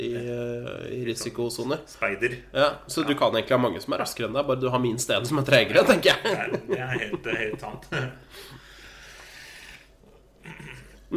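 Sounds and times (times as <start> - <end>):
speech: 1.1 - 8.6
laughter: 5.9 - 8.2
deep breath in: 8.2 - 9.9.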